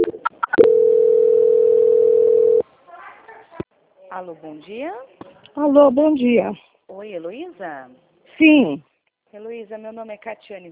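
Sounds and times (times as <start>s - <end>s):
telephone call transfer tone: 0.0s - 2.6s
speech: 4.2s - 10.6s.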